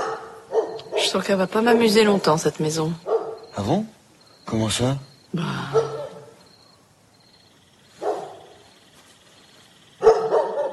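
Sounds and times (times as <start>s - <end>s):
dog barking: 0.0s - 1.2s, 3.0s - 3.5s, 5.7s - 6.4s, 8.0s - 8.6s, 10.0s - 10.7s
speech: 0.8s - 5.9s.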